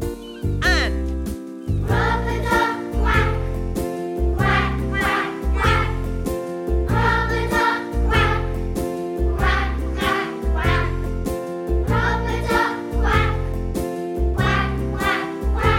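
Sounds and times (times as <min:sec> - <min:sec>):
bouncy, bass-heavy backing music: 0:00.0 - 0:15.7
person singing rubber-duck quack imitations in a children's song: 0:00.6 - 0:01.0.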